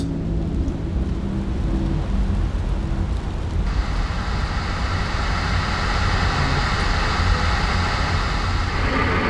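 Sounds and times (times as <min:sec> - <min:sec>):
heavy rain drumming during a thunderstorm while driving: 0:01.0 - 0:09.2
faint storm roar: 0:03.7 - 0:09.2.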